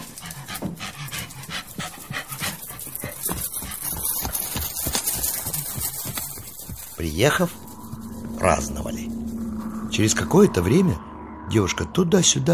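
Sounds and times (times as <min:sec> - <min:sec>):
red dog panting and whimpering while running: 0:00.0 - 0:07.0
white-grey ridden horse hooves clip-clopping: 0:00.0 - 0:08.4
speech: 0:07.0 - 0:07.6, 0:08.4 - 0:09.1, 0:10.0 - 0:12.5.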